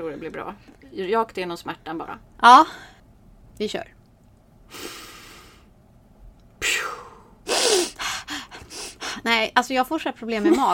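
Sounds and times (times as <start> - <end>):
speech: 0.0 - 2.9, 3.6 - 4.0, 9.2 - 10.7
rapid forceful nasal breathing exercise: 4.7 - 5.7, 6.8 - 9.3.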